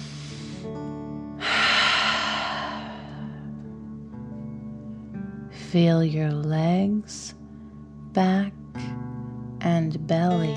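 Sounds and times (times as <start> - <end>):
soft sustained music: 0.0 - 10.5
deep breath in and out through the mouth in a fire-breathing exercise: 1.4 - 3.6
speech: 5.7 - 7.4, 8.2 - 8.9, 9.6 - 10.5.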